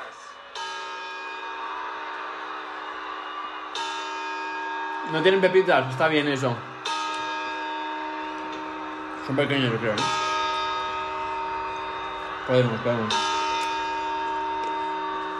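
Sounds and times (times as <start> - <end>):
clock bell chimes: 0.0 - 15.3
speech: 5.1 - 6.7, 9.3 - 10.2, 12.5 - 13.3.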